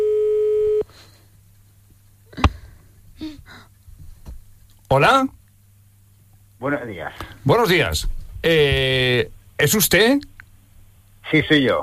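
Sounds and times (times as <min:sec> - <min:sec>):
electronic ringback tone from an outgoing phone call: 0:00.0 - 0:00.8
speech: 0:04.9 - 0:05.4, 0:06.6 - 0:10.3, 0:11.3 - 0:11.8.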